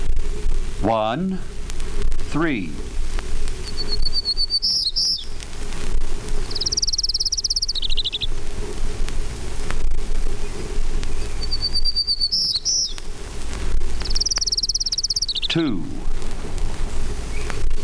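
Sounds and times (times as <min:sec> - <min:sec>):
steady hiss of outdoor noise: 0:00.0 - 0:17.8
speech: 0:00.8 - 0:02.9, 0:15.6 - 0:16.0
Townsend's warbler song: 0:03.6 - 0:05.4, 0:06.4 - 0:08.3, 0:10.3 - 0:13.0, 0:14.0 - 0:15.7, 0:17.3 - 0:17.6.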